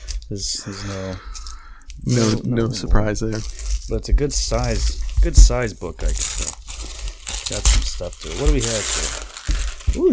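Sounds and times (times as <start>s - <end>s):
green Santa Claus wrapping paper on a gift book crinkling and tearing: 0.0s - 2.5s, 3.1s - 10.1s
speech: 0.3s - 1.4s, 2.0s - 6.6s, 7.5s - 9.2s.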